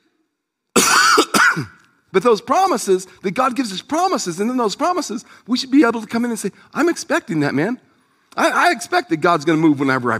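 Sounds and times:
harsh raspy coughing: 0.8s - 1.9s
speech: 1.6s - 10.1s.

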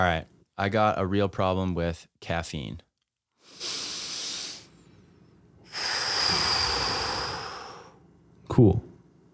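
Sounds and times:
speech: 0.0s - 2.9s, 8.5s - 8.9s
big deep breath with hissing airy inhale and louder exhale: 3.4s - 8.0s.

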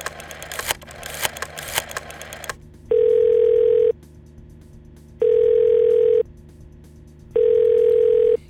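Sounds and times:
crackly clicking and rattling handset noise: 0.0s - 2.6s
telephone ringback tone: 0.0s - 3.9s, 5.2s - 6.2s, 7.4s - 8.4s.

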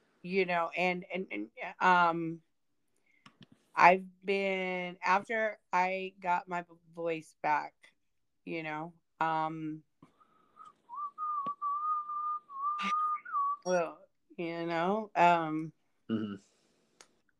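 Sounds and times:
speech: 0.2s - 2.5s, 3.8s - 7.9s, 8.5s - 9.9s, 12.8s - 13.0s, 13.6s - 16.5s
whistling: 10.2s - 13.7s
voice bursts: 16.1s - 16.4s.

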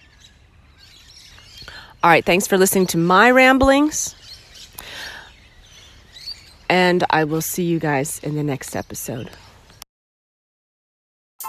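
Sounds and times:
Australian warbling birds singing: 0.0s - 9.8s
speech: 2.0s - 4.2s, 6.7s - 9.4s.

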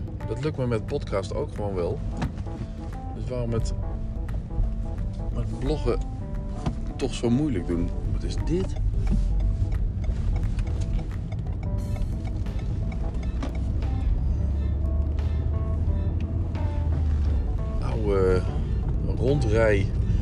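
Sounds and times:
speech: 0.4s - 2.3s, 3.2s - 3.9s, 5.4s - 6.1s, 7.0s - 9.3s, 19.3s - 20.0s
large open-top sightseeing bus engine drone: 1.5s - 20.1s.

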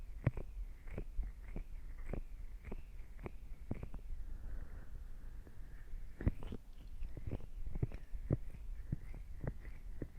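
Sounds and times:
ear cleaning scratchy clicks and scrapes: 0.0s - 4.2s, 6.1s - 10.1s
low muffled rumble: 0.0s - 10.1s
soft rustling stroke: 0.0s - 10.1s.

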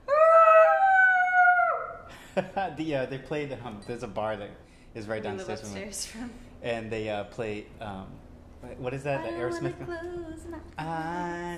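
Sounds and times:
human voice howling like a wolf: 0.1s - 2.0s
speech: 2.4s - 11.5s.

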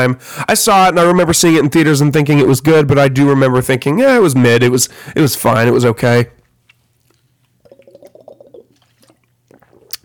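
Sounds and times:
speech: 0.0s - 6.4s
soft mouth sounds: 6.7s - 10.0s
person drinking water with wet gulps and swallows: 7.0s - 10.0s.

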